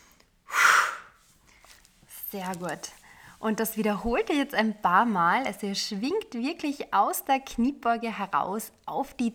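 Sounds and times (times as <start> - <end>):
deep forceful exhale during an exercise session: 0.5 - 1.2
speech: 2.3 - 9.3.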